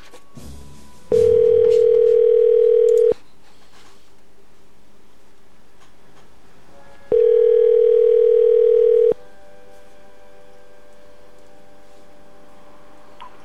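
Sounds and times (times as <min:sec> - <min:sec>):
telephone ringback tone while a call connects: 0:01.1 - 0:03.2, 0:07.1 - 0:09.2.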